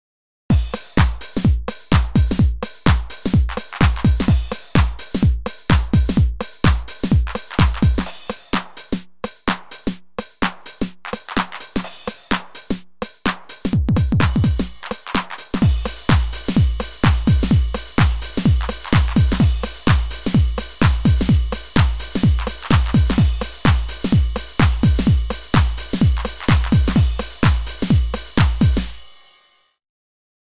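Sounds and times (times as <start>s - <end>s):
Roland TR-909 drum machine shuffle beat: 0.5s - 29.4s.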